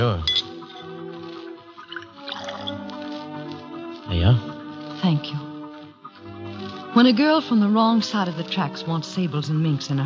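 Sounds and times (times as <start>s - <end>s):
steady low musical background: 0.0s - 10.0s
bourbon gurgling and splashing as poured into a glass: 0.6s - 3.6s
speech: 7.0s - 10.0s.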